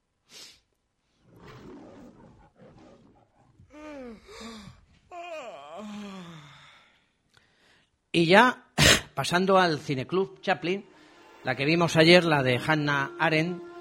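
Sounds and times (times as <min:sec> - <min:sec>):
person yawning with long groaning tone: 0:03.7 - 0:06.9
speech: 0:08.2 - 0:08.6, 0:09.2 - 0:13.7.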